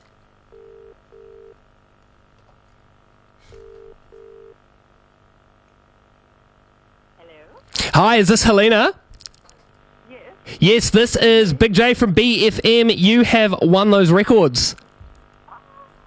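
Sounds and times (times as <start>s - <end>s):
double-burst ringback tones of an outgoing phone call: 0.5s - 1.6s, 3.5s - 4.6s
speech: 8.0s - 9.0s, 10.5s - 14.8s.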